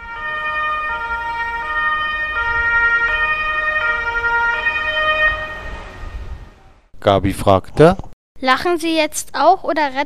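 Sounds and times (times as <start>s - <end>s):
ambulance siren wailing in a two-tone pattern: 0.0s - 6.9s
low rumble of traffic: 0.0s - 7.9s
speech: 7.0s - 10.0s.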